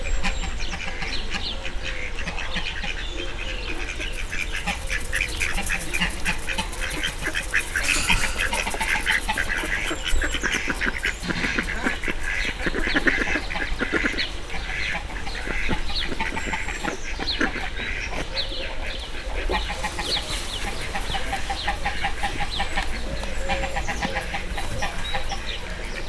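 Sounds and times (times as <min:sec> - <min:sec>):
mallard duck calling on a quiet morning at a zoo: 0:00.2 - 0:25.9.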